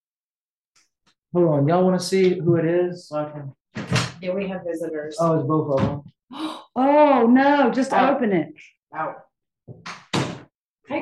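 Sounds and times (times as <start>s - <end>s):
speech: 1.3s - 3.6s, 4.2s - 10.0s
door swinging shut with a solid thump and brief rattle: 9.9s - 10.5s.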